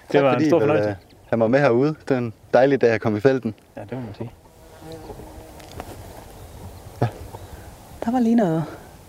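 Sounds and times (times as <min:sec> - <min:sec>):
steady outdoor hum: 0:00.0 - 0:09.0
speech: 0:00.1 - 0:05.9, 0:08.0 - 0:08.8
bumblebee buzzing as it flies past: 0:03.8 - 0:08.9.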